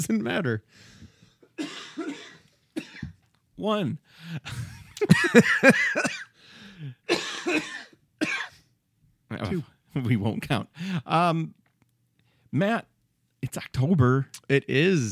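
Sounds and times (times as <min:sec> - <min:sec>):
speech: 0:00.0 - 0:08.4, 0:09.3 - 0:11.6, 0:12.5 - 0:15.0
raspy coughs in short bouts: 0:01.4 - 0:03.2, 0:04.4 - 0:06.4, 0:07.0 - 0:08.7.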